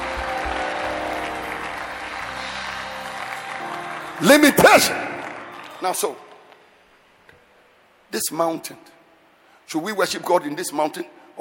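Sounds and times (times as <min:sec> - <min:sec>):
audience clapping hands in praise: 0:00.0 - 0:06.7
speech: 0:04.2 - 0:05.2, 0:05.8 - 0:06.2, 0:08.1 - 0:09.0, 0:09.7 - 0:11.3.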